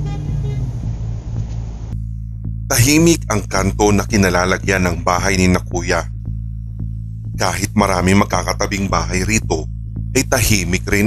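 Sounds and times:
car horn tone: 0:00.0 - 0:00.9
car engine rumbling as the vehicle pulls away: 0:00.0 - 0:11.0
speech: 0:02.7 - 0:06.1, 0:07.4 - 0:11.0.

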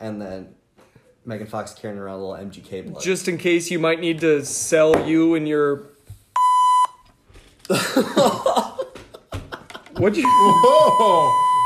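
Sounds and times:
speech: 0:00.0 - 0:00.6, 0:01.2 - 0:06.0, 0:07.7 - 0:08.7, 0:10.0 - 0:11.4
censor bleep covering a swear word: 0:06.4 - 0:07.0, 0:10.2 - 0:11.6
laughter: 0:07.7 - 0:11.6.

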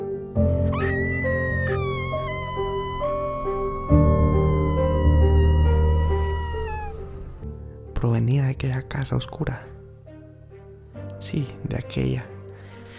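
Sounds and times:
low droning musical backdrop: 0:00.0 - 0:12.9
young girl screaming: 0:00.5 - 0:07.5
speech: 0:08.5 - 0:09.8, 0:11.2 - 0:12.3.

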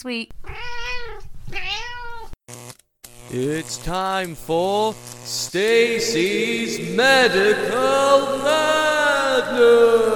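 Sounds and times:
speech: 0:00.0 - 0:00.8, 0:03.3 - 0:10.1
cat meowing loudly: 0:00.4 - 0:02.4.

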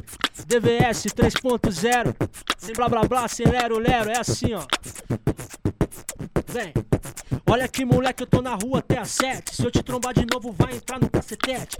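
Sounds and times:
speech: 0:00.0 - 0:05.7, 0:06.5 - 0:06.9, 0:07.5 - 0:11.7
beatboxing with punchy kick and snare bursts: 0:00.0 - 0:11.7.

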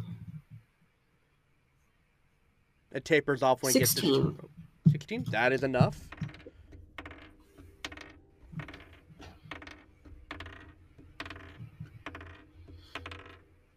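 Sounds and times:
speech: 0:02.9 - 0:06.2
dice tumbling across a hard tabletop: 0:07.9 - 0:13.4.

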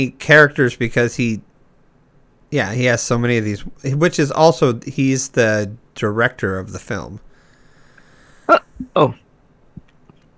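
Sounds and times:
speech: 0:00.0 - 0:01.5, 0:02.5 - 0:07.3, 0:08.5 - 0:09.2
person hiccuping: 0:08.5 - 0:09.2.

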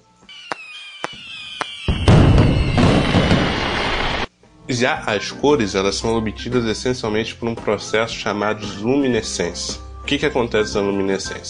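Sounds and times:
fireworks exploding: 0:00.3 - 0:04.3
speech: 0:04.7 - 0:11.4.

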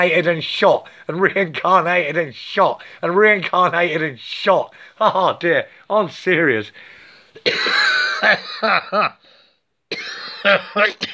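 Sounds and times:
speech: 0:00.0 - 0:09.2, 0:09.9 - 0:11.1
man gasping and wheezing from running out of breath: 0:06.8 - 0:07.5, 0:09.1 - 0:09.7.

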